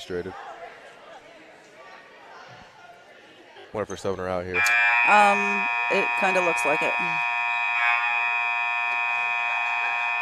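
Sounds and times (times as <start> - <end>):
speech: 0.0 - 0.5, 3.7 - 7.3
malfunctioning arena game clock buzzer blaring: 4.6 - 10.1.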